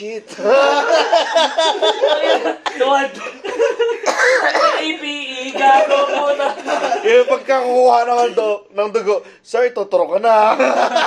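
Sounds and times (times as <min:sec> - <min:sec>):
speech: 0:00.0 - 0:11.0
laughter: 0:00.3 - 0:08.4, 0:10.4 - 0:11.0
person coughing: 0:04.0 - 0:05.0.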